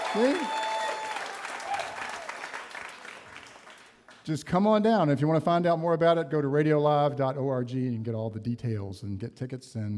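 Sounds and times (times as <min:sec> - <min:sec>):
faint whoops from studio audience: 0:00.0 - 0:02.4
studio audience applauding: 0:00.0 - 0:04.2
speech: 0:00.1 - 0:00.6, 0:04.3 - 0:09.9.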